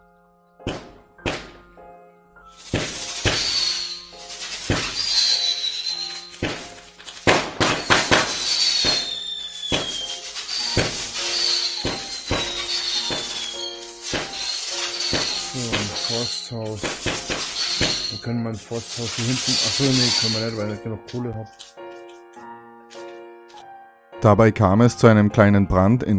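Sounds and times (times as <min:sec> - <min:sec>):
firecrackers exploding outdoors: 0:02.5 - 0:18.2, 0:18.8 - 0:20.7
speech: 0:18.5 - 0:21.6, 0:24.2 - 0:26.1.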